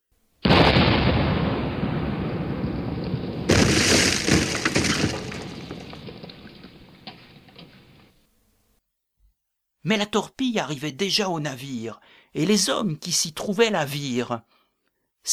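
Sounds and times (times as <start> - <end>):
cannon shell explosion blast: 0.4 - 8.1
shattering crackling debris: 0.5 - 8.2
speech: 9.9 - 14.6.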